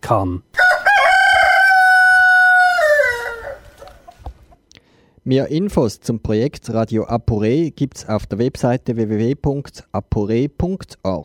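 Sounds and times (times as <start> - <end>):
speech: 0.1 - 0.6, 5.3 - 11.2
rooster crowing: 0.6 - 4.2.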